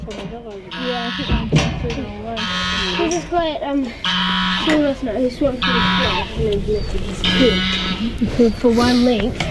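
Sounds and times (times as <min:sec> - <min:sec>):
speech: 0:00.1 - 0:09.4
goose honking on a hilltop: 0:00.7 - 0:01.6, 0:02.2 - 0:06.4, 0:07.2 - 0:08.2.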